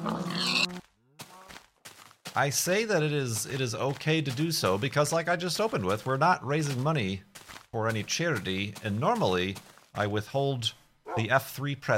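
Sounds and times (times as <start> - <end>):
pig grunting squeal: 0.0 - 0.8
speech: 2.4 - 11.9.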